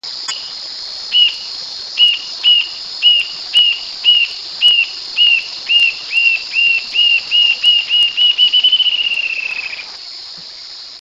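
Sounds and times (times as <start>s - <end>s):
Galbula ruficauda: 2.0s - 10.0s.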